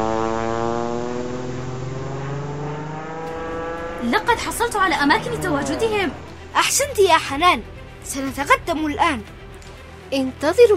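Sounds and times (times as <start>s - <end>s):
small propeller aircraft engine droning: 0.0s - 8.0s
speech: 4.0s - 9.4s, 10.1s - 10.7s.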